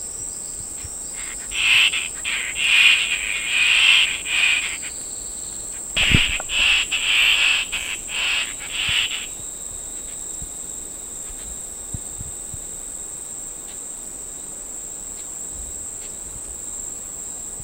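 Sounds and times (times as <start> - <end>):
steady high-pitched insect drone in Danum, Borneo: 0.0 - 13.2
fluffy-backed tit-babbler harsh raspy churring in Danum, Borneo: 1.2 - 5.0, 5.8 - 9.4.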